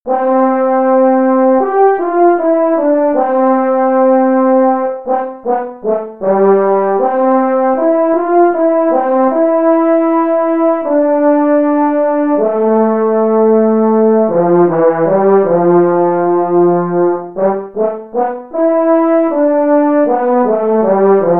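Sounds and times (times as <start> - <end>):
horn playing slowly by a middle school player: 0.1 - 21.3.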